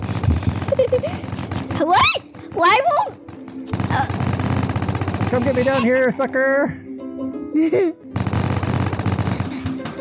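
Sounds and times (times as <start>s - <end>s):
gunfire in a video game: 0.0s - 5.9s, 8.2s - 9.9s
speech: 1.8s - 2.0s, 5.4s - 6.8s, 7.6s - 8.0s.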